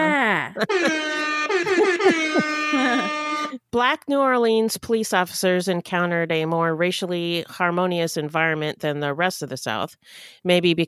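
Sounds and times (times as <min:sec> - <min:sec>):
laughter: 0:00.0 - 0:03.6
speech: 0:00.5 - 0:01.1, 0:03.8 - 0:10.8
hip hop air horn sound effect blaring: 0:00.6 - 0:03.6.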